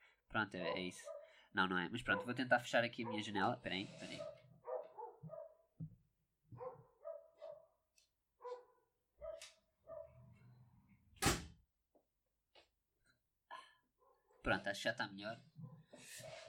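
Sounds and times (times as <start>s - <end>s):
speech: 0.3s - 4.4s, 14.5s - 16.4s
dogs barking outside the window: 0.6s - 1.4s, 2.1s - 5.7s, 6.5s - 7.8s, 8.4s - 10.4s.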